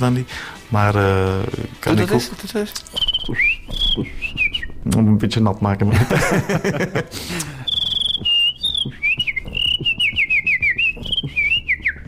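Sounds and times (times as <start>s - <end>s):
speech: 0.0s - 7.6s, 8.2s - 9.0s
person whistling a high warbling melody: 2.9s - 4.8s, 7.4s - 12.0s
laughter: 5.9s - 7.8s.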